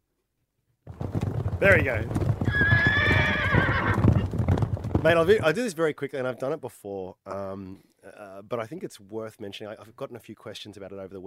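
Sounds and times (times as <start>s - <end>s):
horse hooves clip-clopping: 0.9s - 5.6s
speech: 1.6s - 2.3s, 5.0s - 11.2s
horse neighing: 1.6s - 5.5s.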